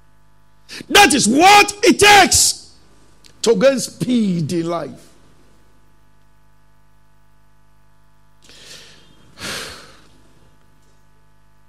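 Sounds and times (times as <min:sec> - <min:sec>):
speech: 0:00.9 - 0:02.6, 0:03.4 - 0:05.1
person imitating heavy panting of a runner after a race: 0:08.5 - 0:10.1.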